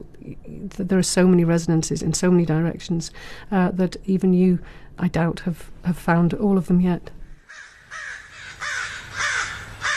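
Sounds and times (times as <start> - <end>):
speech: 0.6 - 7.2
crow cawing: 7.4 - 9.9.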